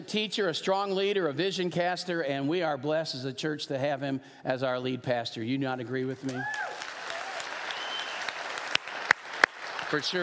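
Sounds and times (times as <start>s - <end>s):
speech: 0.1s - 6.9s, 9.9s - 10.2s
church congregation applauding with soft clapping: 6.3s - 10.2s
sharp claps: 6.3s - 10.2s.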